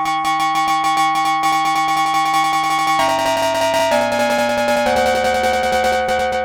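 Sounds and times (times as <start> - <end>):
cross modulated clangorous bells: 0.2 - 6.4.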